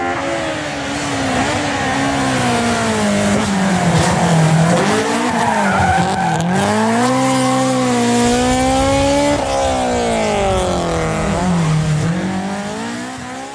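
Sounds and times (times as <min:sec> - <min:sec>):
custom race car with K24 engine driving hard: 0:00.0 - 0:13.5
race car tires skidding and squealing: 0:00.9 - 0:13.5.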